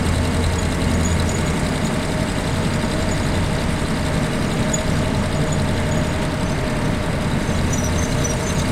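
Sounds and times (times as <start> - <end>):
M5A tank engine running under load, interior: 0.0 - 8.6.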